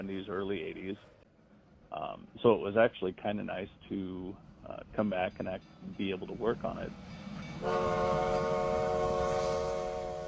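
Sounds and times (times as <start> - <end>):
speech: 0.0 - 1.2, 1.9 - 9.2
tourist railroad train rolling: 0.0 - 10.2
tourist railroad train horn or whistle blast: 7.6 - 10.2.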